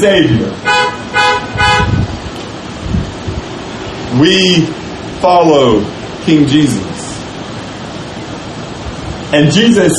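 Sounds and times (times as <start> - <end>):
speech: 0.0 - 0.8, 4.1 - 7.0, 9.3 - 9.9
low rumbling vehicle background: 0.0 - 9.9
car horns honking during a church service: 0.6 - 2.2.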